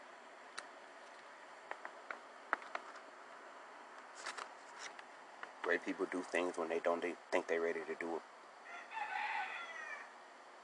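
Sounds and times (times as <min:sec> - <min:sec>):
faint hiss: 0:00.0 - 0:10.6
speech: 0:05.7 - 0:08.3
rooster crowing: 0:08.6 - 0:10.2.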